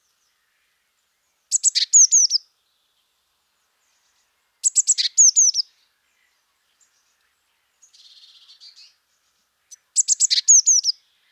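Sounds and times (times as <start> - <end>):
Eurasian blue tit Cyanistes caeruleus giving ticking notes and falling slurred whistles: 1.5 - 2.4, 4.6 - 5.6, 9.7 - 11.0.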